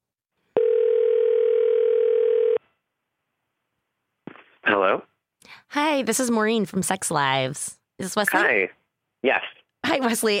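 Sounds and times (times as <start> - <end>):
ringing tone while placing an outgoing phone call: 0.6 - 2.6
speech: 5.7 - 10.3.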